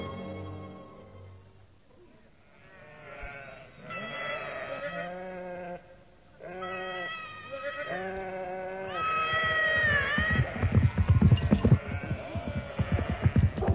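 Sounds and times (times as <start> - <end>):
flock of sheep bleating on a road: 2.4 - 10.8, 11.7 - 13.6.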